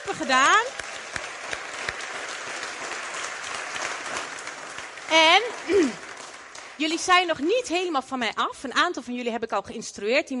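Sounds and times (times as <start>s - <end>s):
crowd applause: 0.0s - 7.9s
speech: 0.1s - 0.7s, 5.1s - 6.0s, 6.8s - 10.3s.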